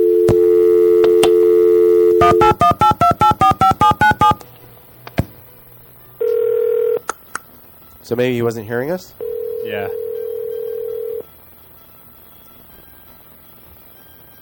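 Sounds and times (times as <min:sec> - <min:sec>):
telephone dial tone: 0:00.0 - 0:04.4, 0:06.2 - 0:07.0, 0:09.2 - 0:11.2
telephone keypad dialing tones: 0:00.0 - 0:04.4, 0:09.2 - 0:11.2
speech: 0:02.2 - 0:02.7, 0:08.1 - 0:10.0.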